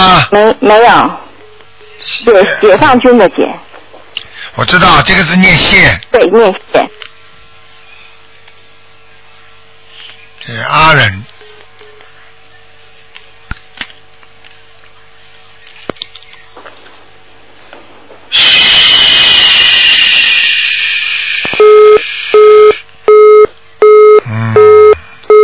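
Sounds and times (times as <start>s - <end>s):
speech: 0.3s - 1.2s, 2.0s - 3.6s, 4.6s - 7.0s, 10.4s - 11.3s
loud rushing hiss on the telephone line: 18.2s - 22.4s
telephone busy tone after a call drops: 21.6s - 25.4s.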